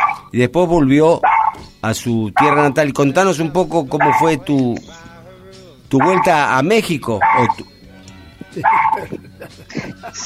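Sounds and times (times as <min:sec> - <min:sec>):
small female dog barking and yipping at home: 0:00.0 - 0:00.3, 0:01.2 - 0:01.6, 0:04.0 - 0:04.3, 0:06.0 - 0:06.4, 0:07.2 - 0:07.6, 0:08.6 - 0:09.0
speech: 0:00.3 - 0:05.1, 0:05.9 - 0:07.7, 0:08.5 - 0:10.2
laughter: 0:08.4 - 0:10.2.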